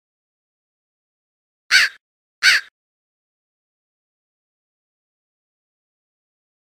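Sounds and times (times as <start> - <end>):
crow cawing at night: 1.7 - 2.7.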